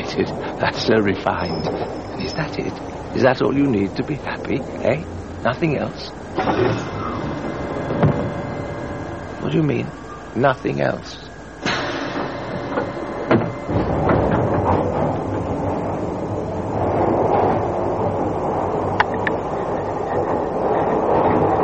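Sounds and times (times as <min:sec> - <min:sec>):
passenger train rumbling along the rails: 0:00.0 - 0:21.6
speech: 0:00.2 - 0:07.2, 0:09.5 - 0:11.2
sharp metallic clanks and thumps of a passenger train: 0:06.4 - 0:08.5, 0:11.6 - 0:16.1.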